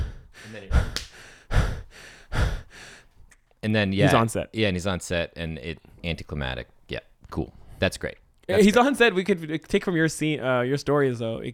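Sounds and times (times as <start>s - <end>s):
voice imitating heavy panting of a man running hard: 0.0s - 3.1s
speech: 3.6s - 11.5s.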